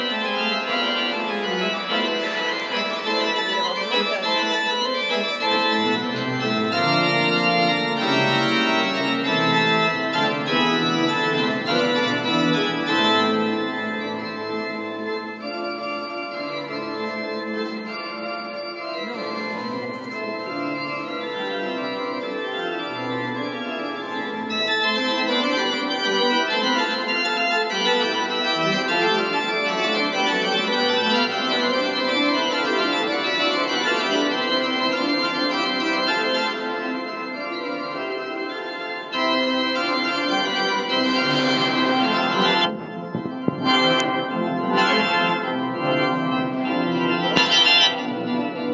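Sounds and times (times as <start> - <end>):
pipe organ: 0.0 - 48.7.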